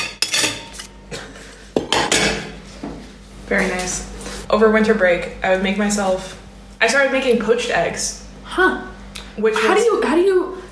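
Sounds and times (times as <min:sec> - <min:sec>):
silverware clinking and clattering: 0:00.0 - 0:00.9
speech: 0:03.5 - 0:10.6.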